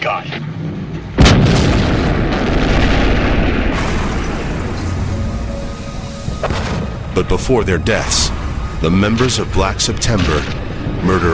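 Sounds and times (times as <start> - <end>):
gunfire and heavy blasts from a chaotic gunfight between snipers and terrorists: 1.2 - 7.2
speech: 7.2 - 11.3.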